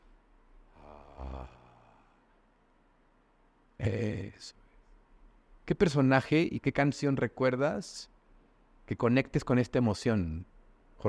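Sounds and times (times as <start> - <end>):
deep breath in on a vocal coach's instruction: 0.7 - 2.3
speech: 3.8 - 4.6, 5.7 - 8.1, 8.9 - 11.0.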